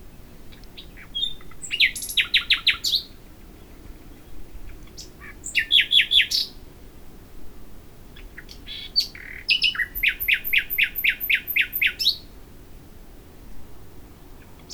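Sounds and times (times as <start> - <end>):
common nightingale Luscinia megarhynchos singing: 0.0 - 6.6, 8.2 - 12.3, 14.4 - 14.7.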